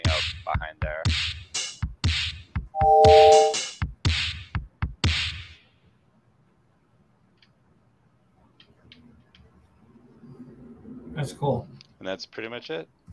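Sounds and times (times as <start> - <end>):
synthesized electronic drum beat from microcontroller board: 0.0 - 5.6
speech: 0.5 - 1.4, 11.4 - 13.0
brief tonal synth note: 2.8 - 3.6.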